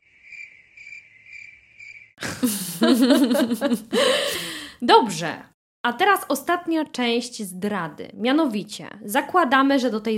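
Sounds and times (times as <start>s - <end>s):
crickets chirping: 0.0s - 2.2s
laughter: 2.2s - 4.4s
speech: 2.4s - 10.1s.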